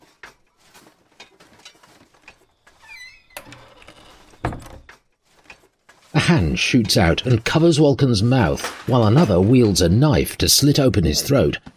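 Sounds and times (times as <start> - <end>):
clunks, scrapes and shuffling of objects being moved about: 0.0 - 9.9
shed door creaking and rattling open: 2.6 - 5.0
speech: 6.3 - 11.7.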